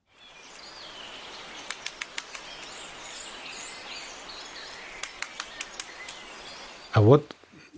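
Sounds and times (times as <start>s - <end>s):
faint birdsong chirping: 0.0s - 7.7s
great spotted woodpecker pecking wood for larva: 1.6s - 2.7s, 5.0s - 6.3s
speech: 7.0s - 7.4s.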